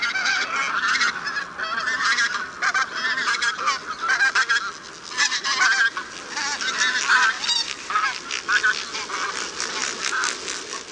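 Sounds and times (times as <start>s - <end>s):
flock of bean geese honking with harsh overlapping calls: 0.0s - 10.9s.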